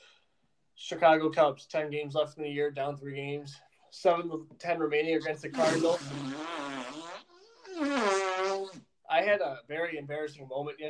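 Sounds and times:
speech: 0.9s - 6.5s, 9.2s - 10.8s
raspberry-like blasts of air forced by a man through cupped hands: 5.6s - 7.2s.

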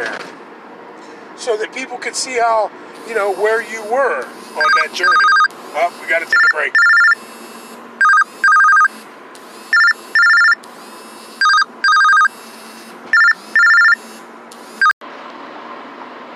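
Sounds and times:
speech: 1.4s - 6.9s
telephone ringing with an incoming call: 4.5s - 9.0s, 9.6s - 14.2s.

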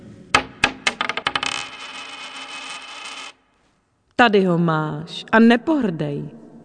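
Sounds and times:
round gold coin thrown down bouncing and spinning on a hard surface: 0.4s - 3.4s
speech: 4.2s - 6.4s.

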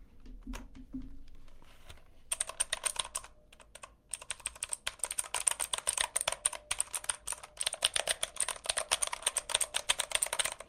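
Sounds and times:
typing on blue-switch mechanical keyboard: 2.3s - 10.6s.

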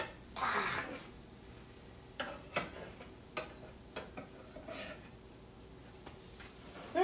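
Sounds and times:
pancakes cooking in a pan: 0.0s - 7.0s
spatula scrapes and clicks against the pan: 2.2s - 5.2s.

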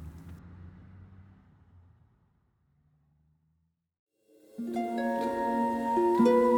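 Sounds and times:
car engine droning on a highway: 0.0s - 3.5s
music with sustained tones: 4.3s - 6.5s.

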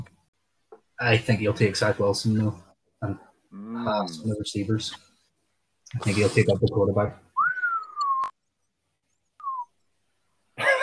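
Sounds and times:
speech: 1.0s - 5.1s, 5.9s - 7.2s
person whistling: 7.4s - 8.3s, 9.4s - 9.7s.

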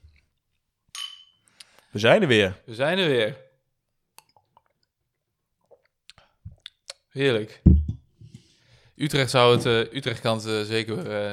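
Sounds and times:
glasses clinking in a toast: 1.0s - 1.4s
speech: 1.9s - 3.4s, 7.2s - 7.7s, 9.0s - 11.3s.

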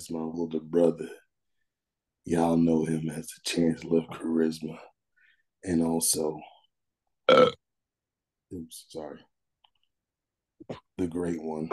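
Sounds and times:
speech: 0.0s - 1.2s, 2.2s - 4.9s, 5.6s - 6.5s, 7.3s - 7.6s, 8.5s - 9.3s, 10.7s - 11.7s
loud throaty burp: 7.3s - 7.6s.

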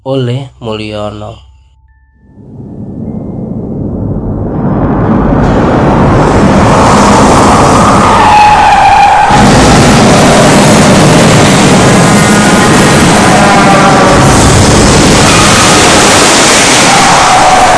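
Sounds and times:
speech: 0.0s - 1.5s
out-of-control car engine roaring: 2.2s - 17.7s
car tires screeching in a long skid: 5.3s - 17.7s.

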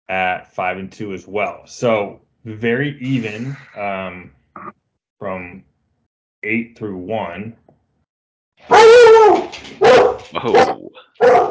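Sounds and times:
speech: 0.1s - 5.7s, 6.4s - 7.6s, 8.6s - 11.4s
dog barking: 8.7s - 11.4s.

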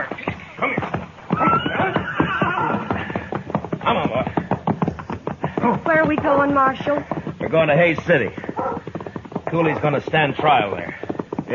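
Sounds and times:
gray horse whinnying: 0.0s - 4.0s, 8.5s - 8.9s
horse hooves clip-clopping: 0.0s - 11.5s
speech: 6.1s - 8.5s, 9.5s - 11.5s.

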